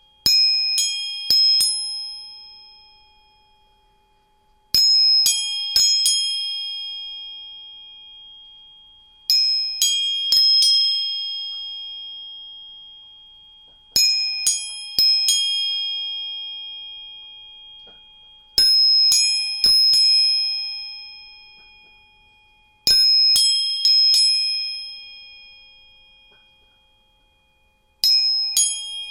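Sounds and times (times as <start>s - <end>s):
three tuning forks: 0.0s - 29.0s.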